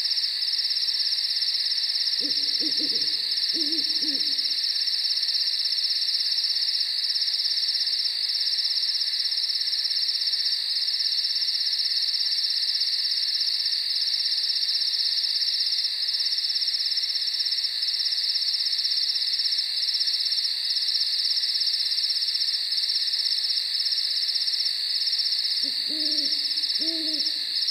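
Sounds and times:
crickets chirping in a dense continuous high trill at night: 0.0s - 27.7s
short low calls: 2.2s - 4.6s, 25.6s - 27.6s.

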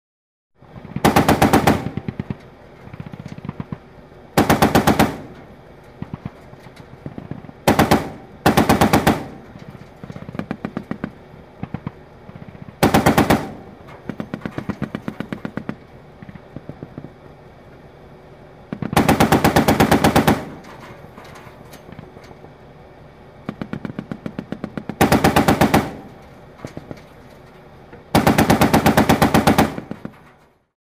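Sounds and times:
tank machine gun firing: 0.8s - 3.8s, 4.4s - 5.4s, 7.2s - 16.3s, 18.7s - 20.7s, 23.5s - 26.3s, 28.1s - 30.1s.

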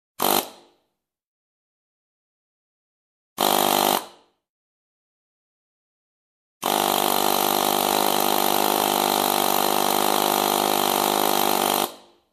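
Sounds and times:
pneumatic impact wrench: 0.2s - 0.8s, 3.4s - 4.4s, 6.6s - 12.2s.

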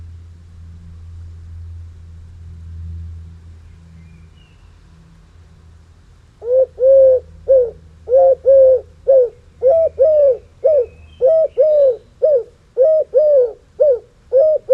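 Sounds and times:
European turtle dove cooing on the nest: 6.4s - 14.7s.

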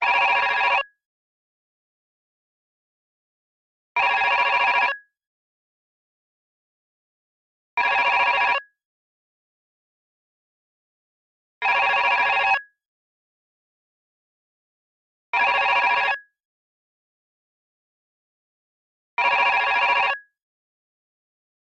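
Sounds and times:
disgusting cheap telephone ringing: 0.0s - 1.0s, 4.0s - 5.2s, 7.8s - 8.8s, 11.6s - 12.8s, 15.4s - 16.4s, 19.2s - 20.4s.

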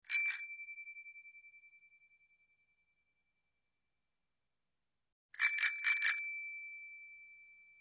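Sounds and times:
bicycle bell ringing: 0.1s - 0.8s, 5.4s - 7.7s.

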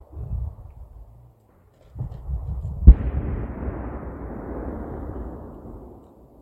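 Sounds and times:
fire: 0.0s - 6.4s
explosion: 2.0s - 6.4s.

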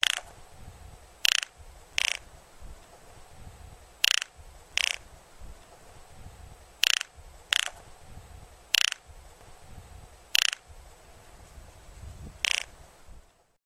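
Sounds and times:
cuckoo calling: 1.2s - 2.4s, 4.0s - 5.2s, 6.8s - 7.9s, 8.7s - 9.1s, 10.3s - 10.7s, 12.4s - 12.8s.

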